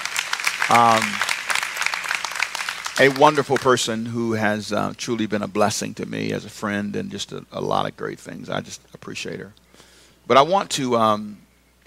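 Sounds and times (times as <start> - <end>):
hand clapping: 0.0 - 3.9
speech: 0.7 - 1.3, 3.0 - 9.6, 10.3 - 11.4.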